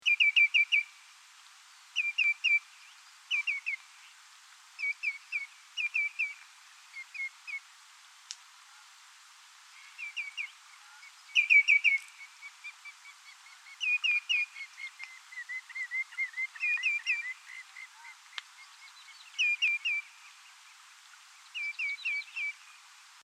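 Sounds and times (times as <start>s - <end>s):
greenshank calling: 0.0s - 0.9s, 2.0s - 2.7s, 3.3s - 3.8s, 4.8s - 7.6s, 9.8s - 20.2s, 21.5s - 22.6s.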